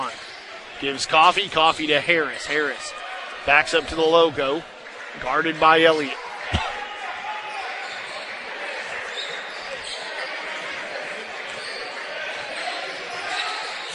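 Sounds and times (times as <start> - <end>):
crowd noise at a basketball game: 0.0 - 13.9
commentator talking over the action: 0.8 - 4.6, 5.2 - 6.8
speech: 0.8 - 6.6
basketball being dribbled during a game: 6.5 - 6.9.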